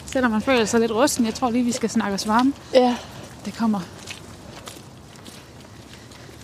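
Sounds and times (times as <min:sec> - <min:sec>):
footsteps of people walking outdoors along the Limfjord: 0:00.0 - 0:06.4
speech: 0:00.1 - 0:04.0.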